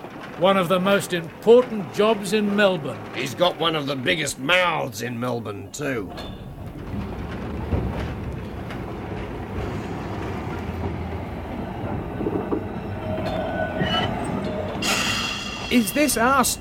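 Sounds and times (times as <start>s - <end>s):
tram in Melbourne rolling along its rails: 0.0s - 16.5s
speech: 0.4s - 6.5s, 15.7s - 16.5s
bright metallic squeal or hiss: 12.8s - 16.5s.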